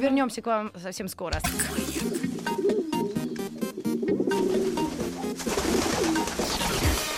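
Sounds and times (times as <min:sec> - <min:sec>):
speech: 0:00.0 - 0:02.9
pigeons cooing: 0:02.0 - 0:07.0.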